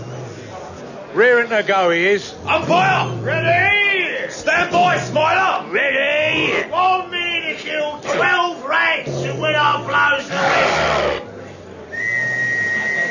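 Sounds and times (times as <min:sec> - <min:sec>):
speech: 0:01.2 - 0:07.0
excited people shouting and yelling: 0:02.4 - 0:11.2
shrill steady whistle blast: 0:11.9 - 0:13.0.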